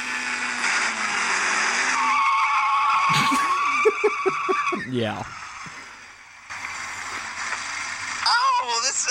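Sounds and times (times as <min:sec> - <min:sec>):
Ferrari sports car tire squeal: 0:00.0 - 0:05.8
Ferrari sports car engine whine: 0:00.0 - 0:08.4
laughter: 0:03.1 - 0:05.0
speech: 0:04.9 - 0:05.4.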